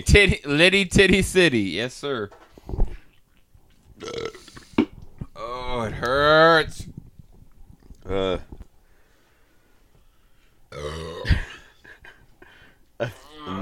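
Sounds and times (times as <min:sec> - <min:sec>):
speech: 0:00.0 - 0:02.8, 0:05.5 - 0:06.9, 0:08.1 - 0:08.5
loud guttural burp: 0:04.0 - 0:05.6, 0:10.7 - 0:11.6, 0:13.0 - 0:13.6
quiet breathing: 0:08.7 - 0:10.7, 0:12.4 - 0:13.0.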